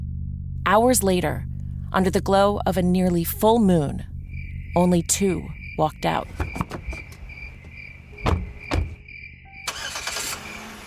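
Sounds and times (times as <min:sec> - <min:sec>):
car engine drone on a road at night: 0:00.0 - 0:10.8
speech: 0:00.7 - 0:04.1, 0:04.7 - 0:06.7
broadband road noise: 0:04.1 - 0:10.8
crickets chirping at night: 0:04.1 - 0:10.8
soft thumps: 0:06.3 - 0:09.0.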